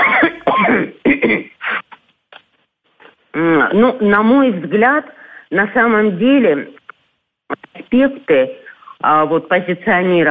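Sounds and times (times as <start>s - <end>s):
person clearing throat: 0.0s - 2.0s
person coughing: 0.0s - 2.0s
speech: 3.4s - 6.8s, 7.9s - 10.3s.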